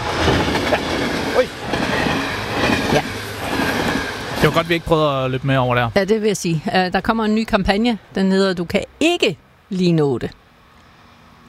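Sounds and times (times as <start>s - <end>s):
train rumbling past at a railway crossing: 0.0s - 8.6s
speech: 4.4s - 10.4s.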